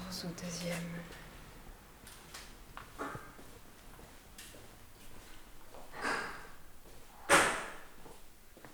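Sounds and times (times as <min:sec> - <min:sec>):
speech: 0:00.2 - 0:01.2
building door slamming shut: 0:07.3 - 0:07.9.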